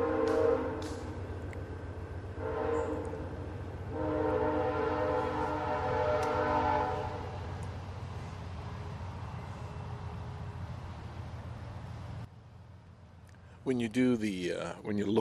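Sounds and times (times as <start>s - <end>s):
distant train horn: 0.0s - 1.1s, 2.3s - 7.6s
distant train rumbling on rails: 0.0s - 15.1s
speech: 13.7s - 15.1s.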